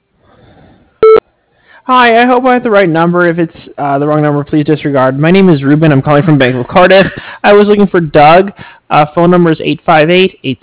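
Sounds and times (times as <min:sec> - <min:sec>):
voicemail beep: 0:01.0 - 0:01.2
speech: 0:01.8 - 0:10.6.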